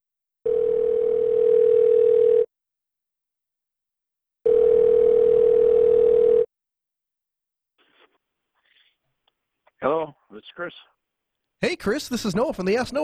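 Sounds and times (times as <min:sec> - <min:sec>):
phone call ringing out with long electronic ring tones: 0:00.5 - 0:02.5, 0:04.5 - 0:06.5
speech: 0:10.4 - 0:11.0, 0:11.6 - 0:13.0.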